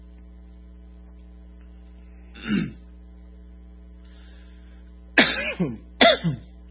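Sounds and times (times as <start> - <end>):
low steady electrical hum: 0.0 - 6.6
person clearing throat and coughing from something caught in the throat: 2.3 - 2.9, 5.2 - 6.6.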